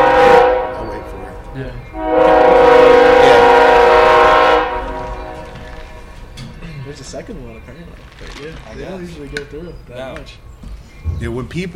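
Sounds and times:
train horn blaring: 0.0 - 6.3
low rumble of passing train: 0.0 - 11.7
speech: 11.2 - 11.7.

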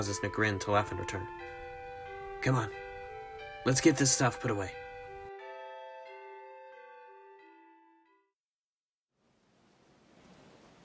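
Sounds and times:
speech: 0.0 - 1.6, 2.4 - 2.8, 3.6 - 4.8
chime-like tone: 0.0 - 6.9
ocean waves: 9.9 - 10.8.

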